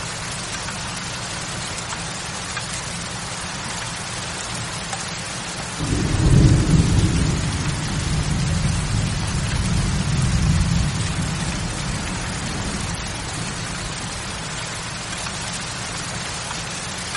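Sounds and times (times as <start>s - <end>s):
steady dense rain: 0.0s - 17.1s
low rumble of thunder: 5.8s - 14.9s.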